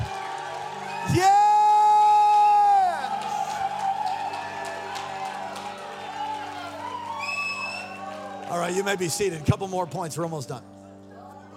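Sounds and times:
sustained high whoop: 0.0 - 8.5
crowd shouting and cheering in a large room: 0.0 - 9.9
speech: 1.0 - 1.4, 8.8 - 10.8.

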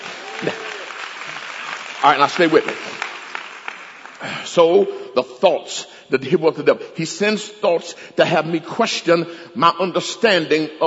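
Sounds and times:
audience clapping hands: 0.0 - 4.8
speech: 0.4 - 0.7, 2.0 - 2.9, 4.2 - 10.8.

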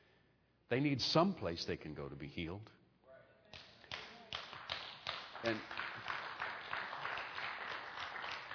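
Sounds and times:
speech: 0.7 - 2.8, 5.4 - 5.8
crowd applauding: 3.9 - 8.5.

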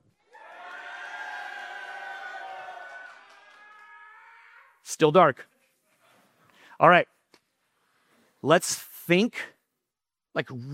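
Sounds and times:
audience cheering and yelling wildly: 0.2 - 4.8
speech: 4.9 - 5.5, 6.8 - 7.1, 8.4 - 9.6, 10.4 - 10.7.

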